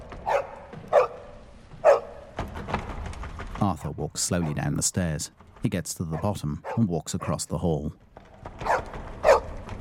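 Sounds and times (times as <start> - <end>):
front door rattling: 0.0 - 6.0, 8.0 - 9.7
dog barking at a front door: 0.2 - 2.2, 6.1 - 7.4, 8.6 - 9.6
speech: 3.6 - 8.2.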